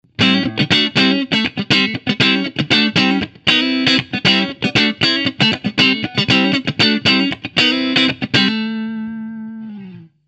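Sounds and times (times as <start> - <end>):
Strat 50s neck electric guitar through JTM45 amplifier: 0.1 - 10.2.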